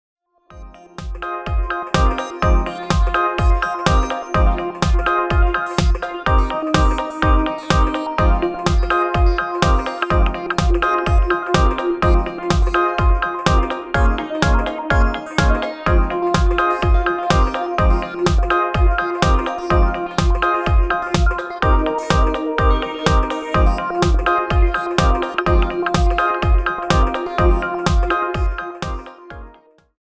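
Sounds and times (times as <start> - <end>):
125 bpm remix music: 0.6 - 29.7.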